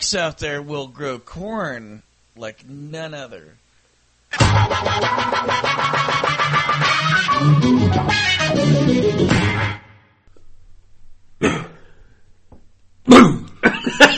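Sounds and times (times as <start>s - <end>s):
speech: 0.1s - 3.6s, 4.6s - 9.8s
person having a rough coughing fit: 11.4s - 12.0s, 13.1s - 13.9s.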